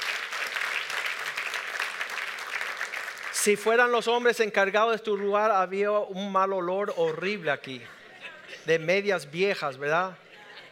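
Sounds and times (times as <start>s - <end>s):
crowd applauding in a church: 0.0s - 4.0s
speech: 3.4s - 8.0s, 8.6s - 10.2s.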